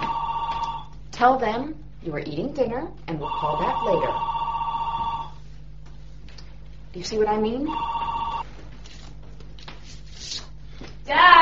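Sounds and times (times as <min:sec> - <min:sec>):
home telephone ringing with electronic trill: 0:00.0 - 0:00.9, 0:03.2 - 0:05.4, 0:07.7 - 0:08.4
speech: 0:01.2 - 0:04.3, 0:06.9 - 0:08.0, 0:11.1 - 0:11.4.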